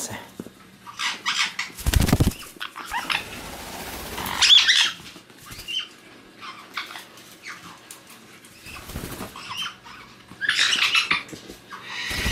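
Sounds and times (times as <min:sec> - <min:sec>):
White-bellied caique chick giving harsh scratchy squawks and chatters: 0:00.8 - 0:03.4, 0:04.1 - 0:07.6, 0:08.7 - 0:12.2.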